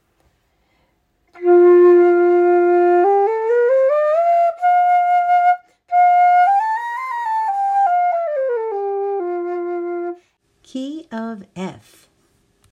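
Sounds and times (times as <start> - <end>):
bamboo flutes in the key of F: 1.3 - 10.2.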